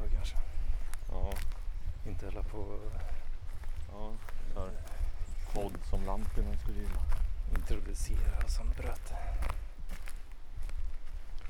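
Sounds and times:
footsteps crunching on a forest floor: 0.0s - 11.4s
low wind rumble: 0.0s - 11.4s
speech: 2.2s - 3.2s, 3.9s - 4.9s, 5.5s - 9.6s.

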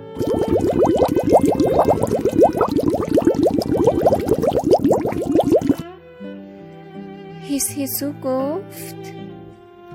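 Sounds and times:
water bubbling in a watering can on a balcony as air is blown through its spout: 0.0s - 5.8s
speech: 7.8s - 9.0s.

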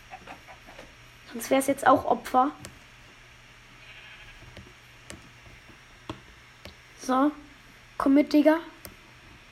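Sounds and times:
speech: 1.3s - 2.7s, 7.1s - 7.4s, 8.0s - 8.8s
sheep bleating: 3.8s - 4.4s.

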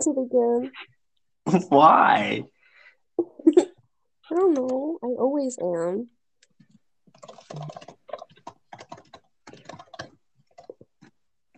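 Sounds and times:
speech: 0.0s - 0.9s, 1.5s - 2.5s, 4.3s - 6.2s, 7.5s - 7.9s
rapid forceful typing on a computer keyboard: 6.5s - 11.2s.

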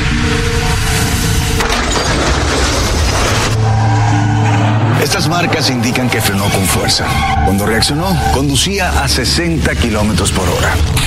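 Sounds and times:
debris rumbling after a car crash: 0.0s - 5.9s
car crash at 60 km/h with crunching metal: 0.6s - 4.5s
glass shattering in a car crash: 1.5s - 3.6s
speech: 5.2s - 11.0s.

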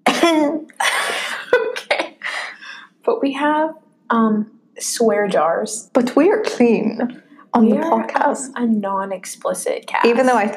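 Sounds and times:
person coughing to clear throat: 0.0s - 2.3s
speech: 0.2s - 0.8s, 3.1s - 10.5s.

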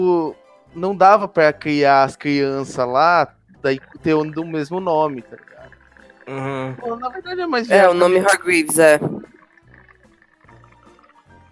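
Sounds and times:
speech: 0.0s - 9.3s
thermos flask gurgling: 3.4s - 11.5s.

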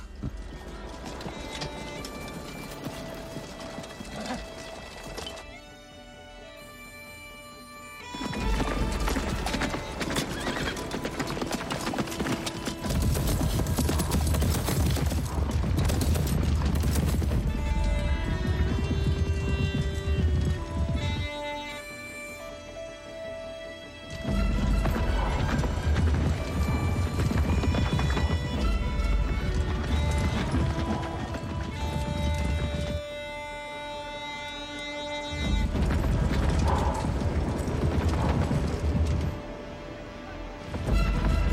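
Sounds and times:
about 200 horses galloping in a cavalry charge: 0.0s - 5.9s, 8.0s - 22.6s, 24.0s - 41.5s.

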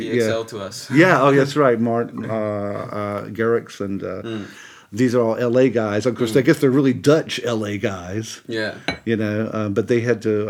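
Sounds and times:
speech: 0.1s - 10.4s
laughter: 0.9s - 3.3s
teaspoon clinking against a cup of tea: 8.9s - 9.1s.

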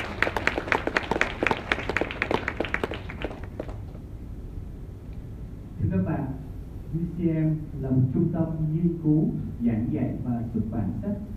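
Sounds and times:
audience applause: 0.0s - 4.0s
speech: 7.2s - 11.3s.

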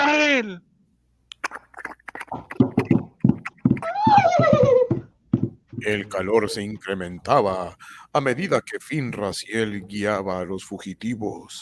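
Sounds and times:
speech: 0.4s - 0.7s, 5.8s - 11.5s
galloping hoofbeats of horses with riders in pursuit: 2.1s - 7.0s
horse whinnying and neighing: 3.8s - 5.0s.

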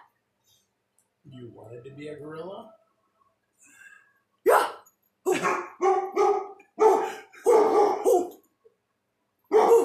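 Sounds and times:
speech: 1.4s - 2.8s
dog barking: 5.3s - 8.4s, 9.5s - 9.8s.

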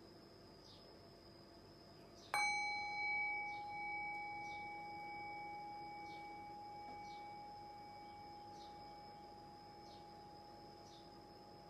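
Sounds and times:
single meditation bell struck: 2.3s - 11.6s.

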